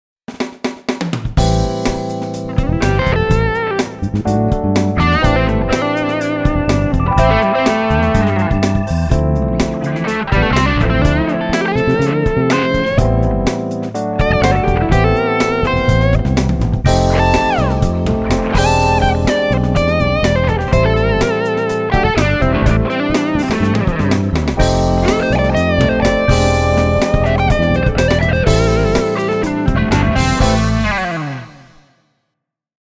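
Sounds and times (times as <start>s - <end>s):
fusion lead: 1.4s - 31.9s.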